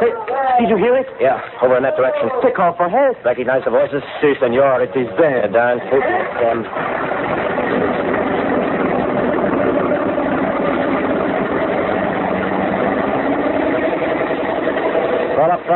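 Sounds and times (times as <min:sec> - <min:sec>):
speech: 0:00.6 - 0:08.1, 0:15.4 - 0:15.7
vehicle engine running as a car is driven through thick fog: 0:05.2 - 0:15.7.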